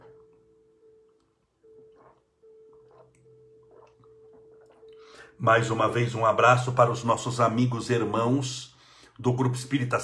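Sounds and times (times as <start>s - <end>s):
steady electrical hum: 0.0s - 10.0s
person drinking water from a water bottle: 1.1s - 5.9s
water sloshing in a bottle: 1.6s - 5.9s
speech: 5.4s - 10.0s.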